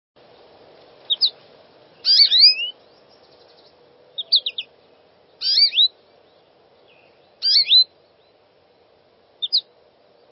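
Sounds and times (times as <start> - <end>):
American Goldfinch calling: 1.1 - 1.4, 2.0 - 4.7, 5.4 - 8.4, 9.4 - 9.7.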